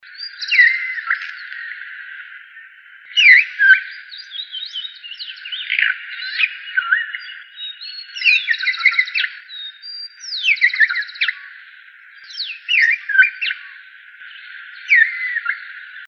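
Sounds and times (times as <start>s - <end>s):
boyero negro calling: 0.0s - 16.0s.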